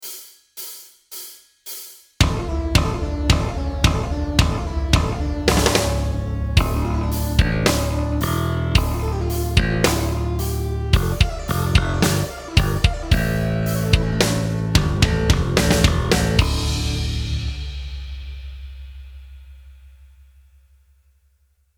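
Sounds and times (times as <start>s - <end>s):
backing track: 2.2s - 18.6s
sweep arpeggio bursts: 2.4s - 17.4s.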